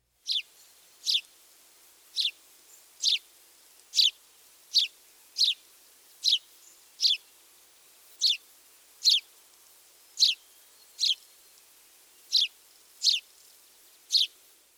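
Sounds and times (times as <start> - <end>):
house sparrow chirping: 0.2 - 1.3, 2.2 - 2.4, 3.0 - 3.2, 3.9 - 5.6, 6.2 - 7.3, 8.2 - 8.4, 9.0 - 9.3, 10.2 - 11.3, 12.2 - 13.3, 14.1 - 14.4.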